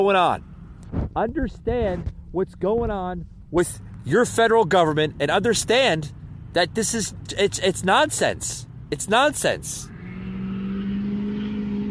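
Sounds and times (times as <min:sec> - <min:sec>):
speech: 0:00.0 - 0:00.5, 0:01.2 - 0:09.9
car driving by: 0:03.6 - 0:11.8.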